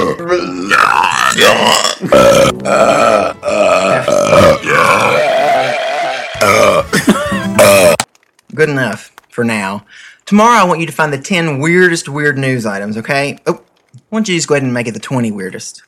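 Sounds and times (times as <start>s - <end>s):
recorded belches played from a disc: 0.0s - 5.5s, 6.4s - 8.1s
speech: 0.2s - 3.4s, 8.6s - 15.8s.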